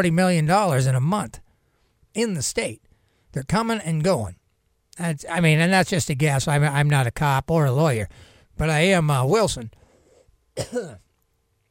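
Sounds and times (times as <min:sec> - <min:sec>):
speech: 0:00.0 - 0:01.4, 0:02.1 - 0:04.4, 0:05.0 - 0:09.8, 0:10.6 - 0:11.0
person coughing: 0:10.6 - 0:11.1
rough throat clearing: 0:10.6 - 0:11.1.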